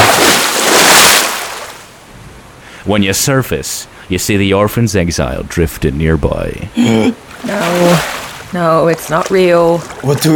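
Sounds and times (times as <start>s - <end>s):
stormy ocean waves: 0.0s - 2.7s, 7.2s - 10.1s
speech: 2.8s - 10.3s.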